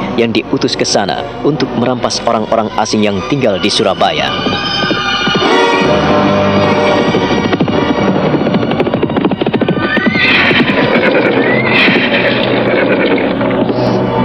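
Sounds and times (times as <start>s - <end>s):
speech: 0.2s - 4.8s
horses neighing and whinnying: 3.5s - 6.0s, 9.2s - 14.1s
horse hooves clattering: 3.6s - 14.2s.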